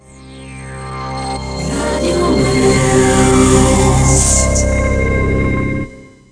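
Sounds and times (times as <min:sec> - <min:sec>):
slow jingle: 0:01.6 - 0:06.2.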